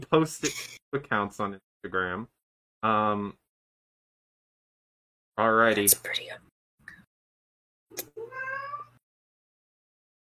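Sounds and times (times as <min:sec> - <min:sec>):
speech: 0:00.0 - 0:03.4, 0:05.4 - 0:06.5
cat meowing: 0:08.0 - 0:09.0.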